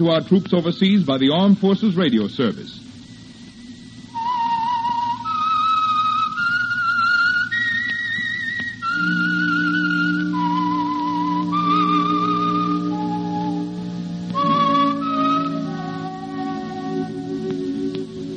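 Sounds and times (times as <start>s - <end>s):
speech: 0.0s - 2.8s
whistled slow haunting melody: 4.1s - 18.3s
orchestral backing: 4.2s - 18.3s.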